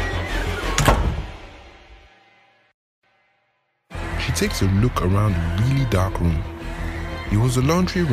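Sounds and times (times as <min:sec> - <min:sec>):
door thudding shut: 0:00.7 - 0:01.6
speech: 0:04.4 - 0:08.1.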